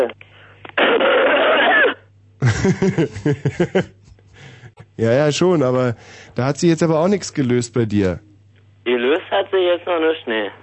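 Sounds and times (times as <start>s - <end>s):
speech: 0.0s - 0.3s, 2.6s - 4.0s, 5.0s - 10.6s
forced raspy cough from a man ill with a cold: 1.0s - 2.8s
laughter: 2.4s - 4.9s.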